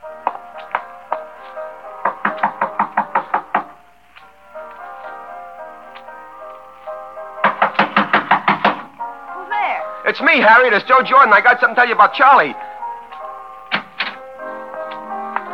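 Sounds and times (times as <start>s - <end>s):
loud knocking on the door of a woman's room: 2.0s - 3.8s, 7.4s - 8.9s
speech: 10.1s - 12.7s.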